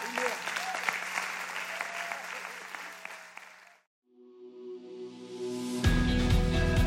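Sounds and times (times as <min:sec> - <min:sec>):
large crowd applauding: 0:00.0 - 0:03.9
music: 0:04.1 - 0:06.8.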